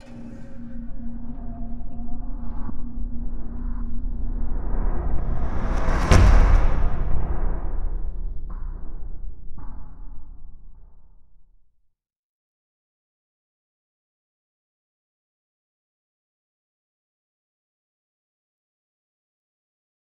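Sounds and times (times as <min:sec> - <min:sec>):
ambient atmosphere: 0:00.0 - 0:11.2.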